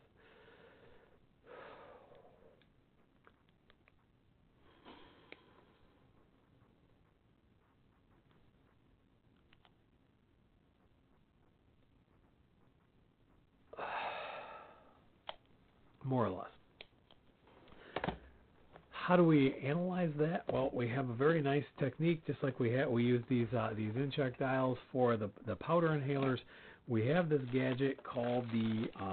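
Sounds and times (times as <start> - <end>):
slow deep breathy inhalation: 0.2 - 2.6, 4.6 - 5.9, 13.8 - 15.0, 26.5 - 26.8
speech: 16.0 - 16.6, 19.1 - 29.1.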